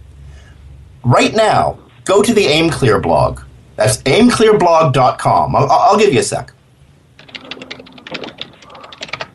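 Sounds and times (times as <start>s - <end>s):
faint room noise: 0.0s - 9.3s
speech: 1.0s - 6.6s
computer keyboard typing: 7.2s - 9.3s.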